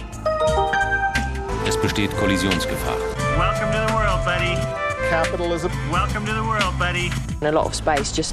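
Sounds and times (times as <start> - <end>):
phone's melodic ringtone: 0.3 - 1.7
speech: 1.9 - 8.3.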